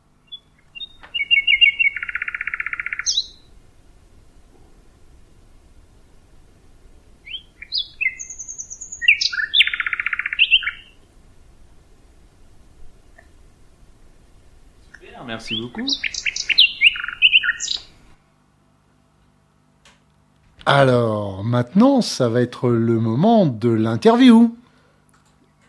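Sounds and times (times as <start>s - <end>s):
faint low hiss: 0.0s - 25.6s
songbird singing at night with buzzy trills and whistled notes: 0.2s - 3.6s, 7.2s - 11.0s, 15.0s - 18.1s
speech: 15.3s - 16.1s, 20.7s - 24.6s.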